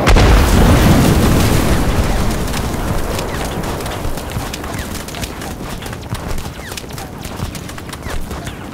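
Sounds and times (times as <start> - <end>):
tank explosion: 0.0 - 5.1.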